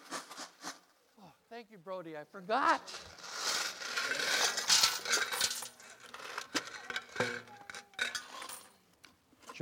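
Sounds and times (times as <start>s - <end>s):
speech: 1.8s - 3.2s, 4.1s - 5.3s
coins being dumped into a can: 3.0s - 8.8s.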